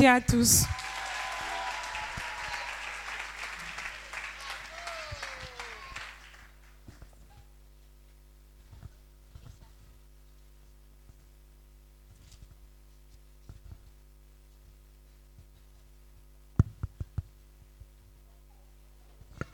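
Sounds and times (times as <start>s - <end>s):
speech: 0.0s - 0.8s
audience at a worship gathering applauding: 0.6s - 6.8s.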